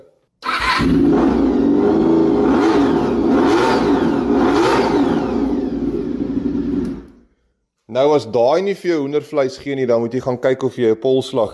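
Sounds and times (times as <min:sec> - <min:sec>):
motorcycle engine starting and revving: 0:00.4 - 0:07.2
speech: 0:00.8 - 0:01.4, 0:08.0 - 0:11.5.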